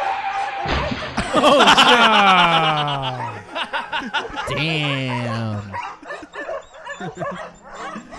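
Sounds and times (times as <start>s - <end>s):
laughter: 1.2s - 8.1s
speech: 1.4s - 5.8s, 7.0s - 7.5s
dog barking and yelping: 3.2s - 3.4s, 4.2s - 8.1s.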